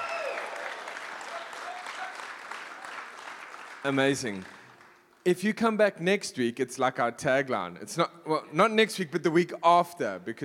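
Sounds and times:
faint whoops and voices from the crowd: 0.0 - 2.2
audience applause: 0.0 - 5.1
speech: 3.8 - 4.6, 5.2 - 10.4.

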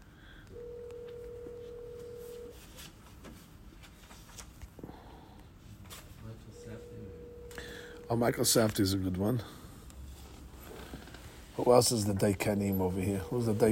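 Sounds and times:
steady fairly loud telephone tone: 0.5 - 2.6, 6.4 - 8.6
speech: 8.1 - 9.6, 11.6 - 13.7.

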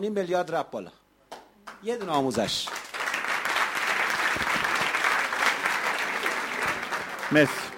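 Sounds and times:
speech: 0.0 - 1.0, 1.8 - 2.8, 7.3 - 7.7
audience applause: 2.4 - 7.7.

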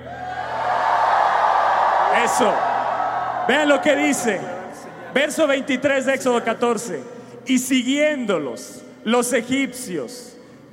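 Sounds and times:
audience at a worship service shouting and cheering: 0.0 - 5.9
speech: 2.3 - 2.7, 3.5 - 4.6, 5.2 - 10.3.

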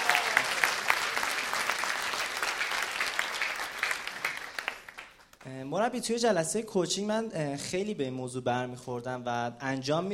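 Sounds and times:
audience applauding: 0.0 - 5.4
speech: 5.7 - 10.1.

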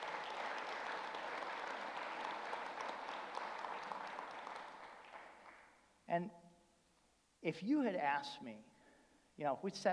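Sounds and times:
large church audience applauding: 0.0 - 5.7
speech: 6.1 - 6.4, 7.4 - 8.7, 9.4 - 9.9.

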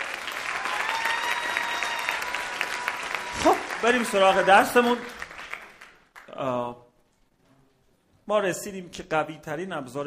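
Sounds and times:
audience applause: 0.0 - 6.3
speech: 3.4 - 5.2, 6.4 - 6.8, 8.3 - 10.0.

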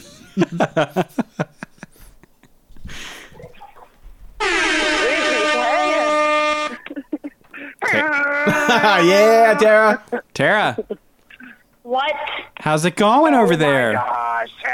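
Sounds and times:
speech: 0.0 - 1.5, 8.8 - 11.0, 11.9 - 14.7
people laughing: 0.0 - 3.9, 4.5 - 11.0
air horn blast: 4.4 - 6.8.

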